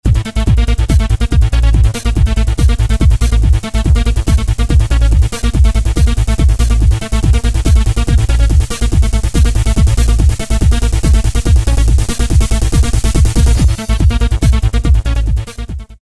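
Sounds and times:
Goa trance break pattern on a Roland MC-303: 0:00.0 - 0:16.0.

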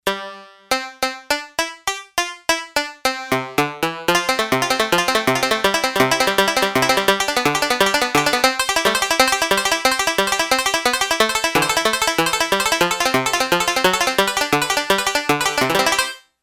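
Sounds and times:
Yamaha DX11 synthesizer Banjo factory preset voice: 0:00.0 - 0:16.2.

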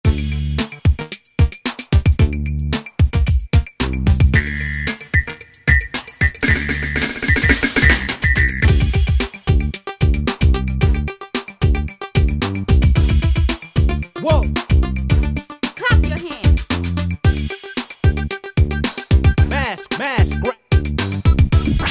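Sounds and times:
old school beat on a Yamaha DJX-IIB keyboard: 0:00.0 - 0:21.8.

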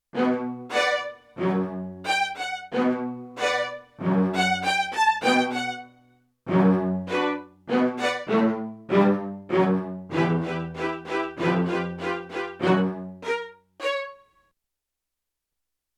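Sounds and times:
stereo bowed violin orchestra on a sampler: 0:00.2 - 0:14.2.

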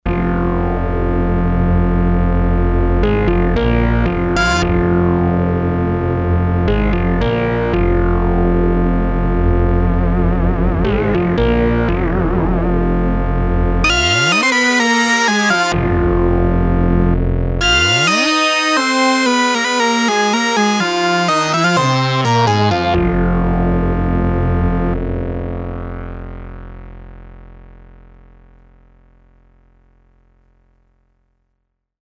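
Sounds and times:
Sequential Circuits Six-Trak synthesizer stack: 0:00.1 - 0:25.2.

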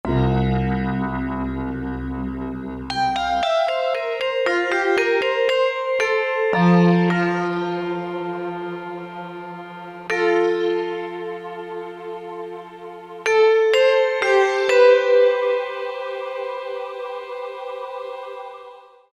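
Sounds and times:
fantasy factory synthesizer patch: 0:00.0 - 0:18.8.

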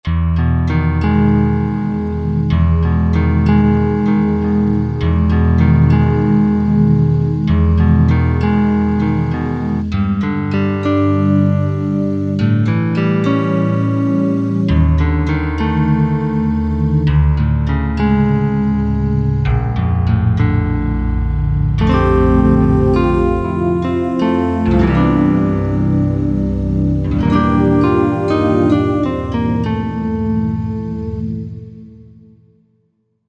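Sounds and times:
synthesizer guitar tone on a Korg Wavestation A-D: 0:00.4 - 0:32.5.

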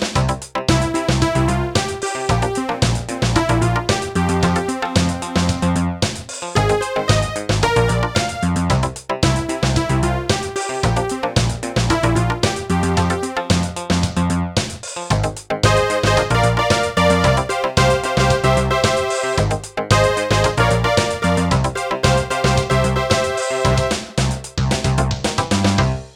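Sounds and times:
Yamaha PSR-300 keyboard dance style music: 0:00.2 - 0:25.8.

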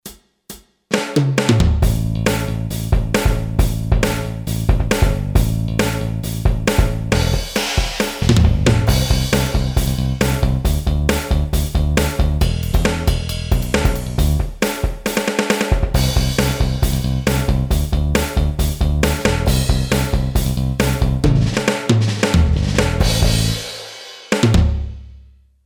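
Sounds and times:
Boss DR-3 hard rock pattern: 0:00.0 - 0:25.0.

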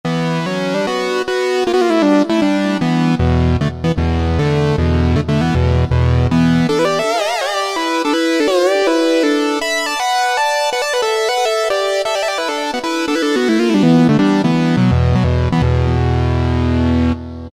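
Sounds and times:
Yamaha EX5R synthesizer factory lead preset playing quick fifths: 0:00.6 - 0:17.1.

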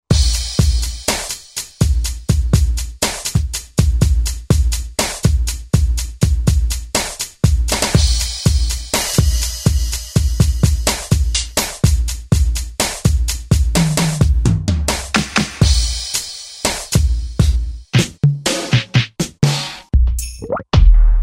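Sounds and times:
pop R&B drum kit on a Korg TR-Rack: 0:00.0 - 0:21.2.

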